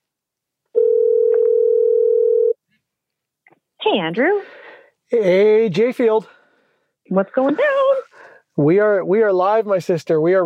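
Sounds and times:
telephone dial tone while calling someone: 0:00.8 - 0:02.6
speech: 0:03.9 - 0:06.4, 0:07.1 - 0:08.0, 0:08.6 - 0:10.4.

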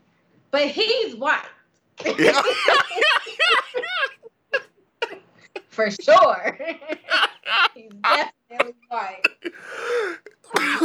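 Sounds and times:
speech: 0:00.5 - 0:03.6, 0:05.8 - 0:10.8
laughter: 0:02.0 - 0:10.8
harsh cough: 0:07.1 - 0:10.8
raspy throat noises: 0:09.2 - 0:10.8.

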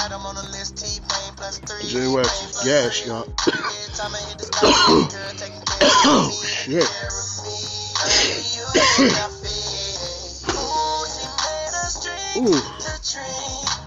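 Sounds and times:
music: 0:00.0 - 0:13.8
speech: 0:00.2 - 0:09.7, 0:12.4 - 0:13.8
person coughing: 0:03.4 - 0:05.2, 0:05.8 - 0:06.6, 0:08.1 - 0:09.3
throat clearing: 0:03.4 - 0:05.2, 0:08.1 - 0:09.3.

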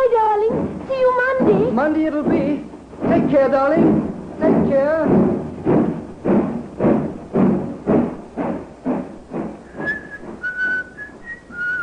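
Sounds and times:
heavy chugging thumps: 0:00.0 - 0:11.8
speech: 0:01.8 - 0:05.4
man whistling a short cheerful tune: 0:09.8 - 0:11.8.

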